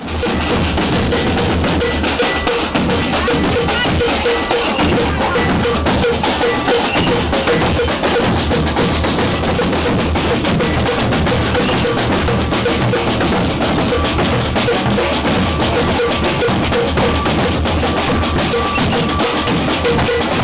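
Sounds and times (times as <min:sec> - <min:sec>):
maracatu warm up drumming: 0:00.0 - 0:20.4.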